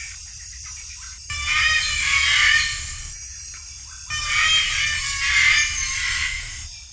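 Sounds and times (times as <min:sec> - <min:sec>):
cockatoo screeching: 0:01.3 - 0:03.2, 0:04.1 - 0:06.9.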